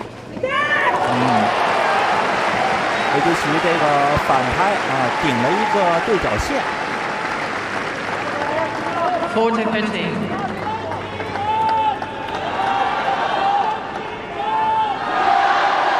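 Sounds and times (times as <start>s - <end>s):
people shouting in a tennis stadium crowd: 0.4s - 6.0s, 10.5s - 15.9s
tennis stadium crowd cheering: 0.5s - 15.9s
speech: 3.3s - 6.8s, 9.3s - 10.4s.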